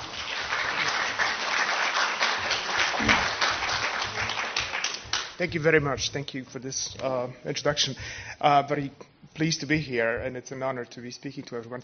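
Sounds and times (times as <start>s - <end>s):
audience round of applause: 0.0s - 5.4s
speech: 5.4s - 11.8s.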